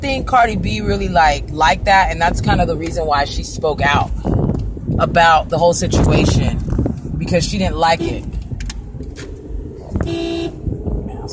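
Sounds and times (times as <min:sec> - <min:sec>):
speech: 0:00.0 - 0:04.4, 0:05.0 - 0:08.3, 0:10.1 - 0:10.4
low rumble of traffic and engine noise: 0:00.0 - 0:11.3
car horn honking in traffic in Arizona: 0:07.8 - 0:08.4, 0:09.9 - 0:10.6.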